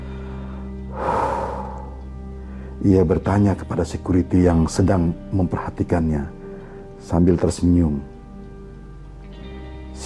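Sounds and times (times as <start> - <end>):
voice imitating heavy panting: 0.9 - 2.1
speech: 2.8 - 6.4, 7.0 - 8.1.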